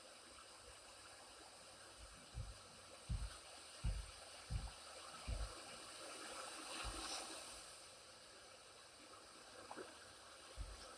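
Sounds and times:
low thumping knocks: 2.0 - 5.6, 10.6 - 10.8
water running: 2.0 - 7.4.

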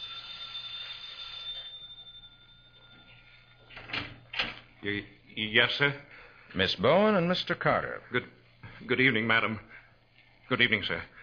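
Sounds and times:
doorbell chime: 0.0 - 4.4
speech: 4.8 - 9.7, 10.5 - 11.1.

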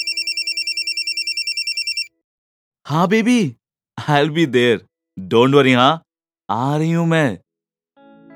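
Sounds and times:
telephone ringing with a rapid trilling electronic bell: 0.0 - 2.1
speech: 2.9 - 7.4.

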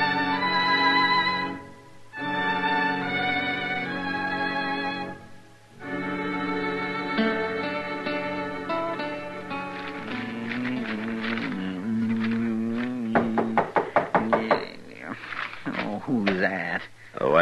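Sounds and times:
sustained tonal music or voices: 0.0 - 17.4
knocking on a wooden door: 13.1 - 14.7.

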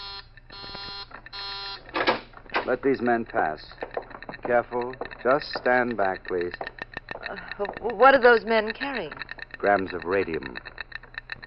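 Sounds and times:
loud harsh electronic warning buzzer: 0.0 - 2.0
speech: 2.7 - 3.8, 4.5 - 6.7, 7.3 - 10.7.

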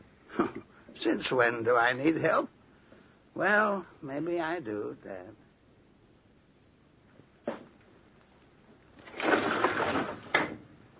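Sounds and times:
speech: 1.0 - 2.6, 3.4 - 5.4
window sliding open with a wooden scraping rumble: 9.0 - 10.6.

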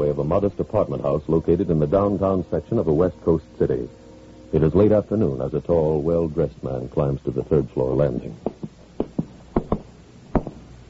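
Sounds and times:
speech: 0.2 - 8.7
knocking on an apartment door: 10.4 - 10.6.

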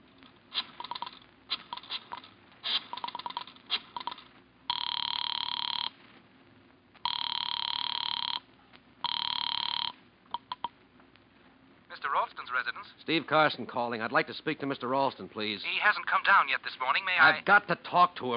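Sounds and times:
telephone ringing through the line: 0.8 - 1.2, 3.0 - 6.0, 7.0 - 10.7
speech: 12.5 - 18.3.

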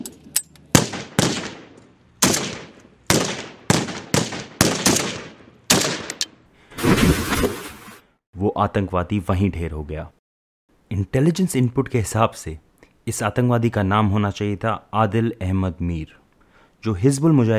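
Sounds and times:
assault rifle gunfire: 0.7 - 6.2
speech: 8.6 - 10.2, 10.9 - 16.2, 16.8 - 17.5.

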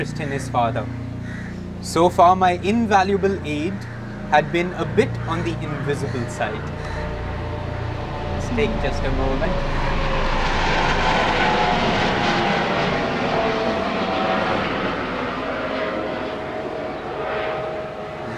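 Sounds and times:
speech: 0.0 - 7.0, 8.4 - 9.9
faint whining hum: 0.0 - 18.3
helicopter engine droning overhead: 0.0 - 18.3.

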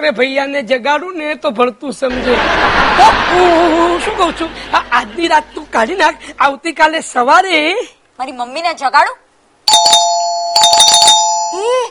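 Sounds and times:
speech: 0.0 - 10.0
laughter: 2.1 - 6.2
loud electronic doorbell chime ringing at night: 9.7 - 11.8.

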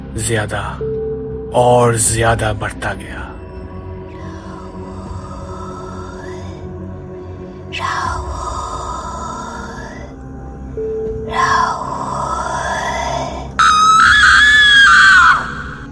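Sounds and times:
low rumbling background: 0.0 - 14.6
speech: 0.2 - 3.4, 7.7 - 8.4
woman screaming: 12.4 - 15.9.

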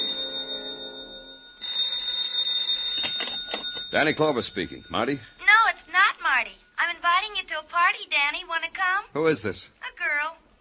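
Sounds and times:
telephone bell ringing at headquarters: 0.0 - 6.8
speech: 3.9 - 5.4, 7.4 - 9.8.

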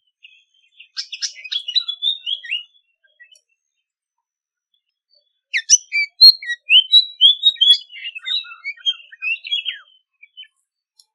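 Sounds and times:
white-spotted fantail singing tinkling piping phrases: 0.1 - 3.5, 5.6 - 10.7.

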